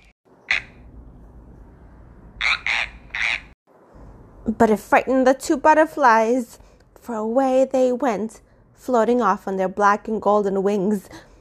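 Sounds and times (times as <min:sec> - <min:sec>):
loud frog croaks: 0:00.0 - 0:00.9, 0:02.4 - 0:03.6
speech: 0:04.4 - 0:11.3.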